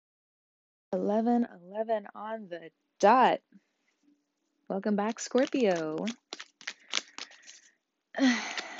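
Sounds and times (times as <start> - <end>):
speech: 0.9 - 3.7, 4.7 - 6.4, 8.2 - 8.6
tarot cards being shuffled: 5.0 - 7.7, 8.3 - 8.7.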